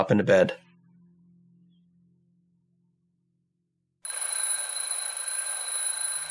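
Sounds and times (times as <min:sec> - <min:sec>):
speech: 0:00.0 - 0:00.6
quiet low hum: 0:00.6 - 0:04.0
loud continuous electronic alarm clock ringing: 0:04.0 - 0:06.2.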